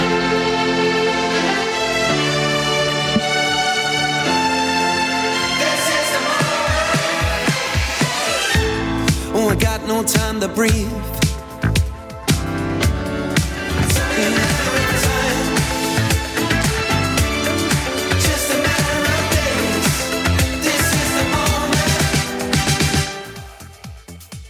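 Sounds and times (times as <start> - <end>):
layered melodic synths: 0.0 - 24.3
sung vocal over a pop single: 5.4 - 11.4, 13.4 - 24.4
driving drums and bass: 8.6 - 23.0
speech: 10.0 - 11.2.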